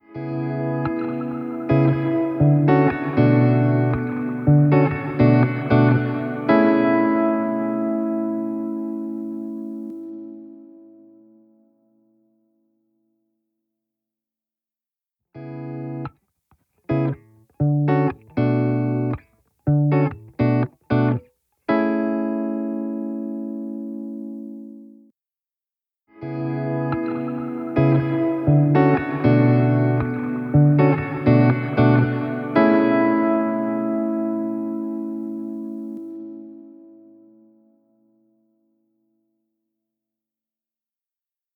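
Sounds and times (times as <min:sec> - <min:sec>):
guitar music: 0:00.0 - 0:12.2, 0:15.4 - 0:16.2, 0:16.8 - 0:25.1, 0:26.2 - 0:38.4.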